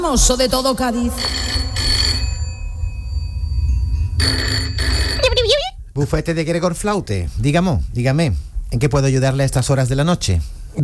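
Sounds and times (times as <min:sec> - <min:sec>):
speech: 0:00.1 - 0:01.6, 0:06.0 - 0:10.6
quiet telephone line hum: 0:01.0 - 0:06.2
telephone ringing on an outgoing call: 0:01.1 - 0:02.8, 0:04.2 - 0:05.6.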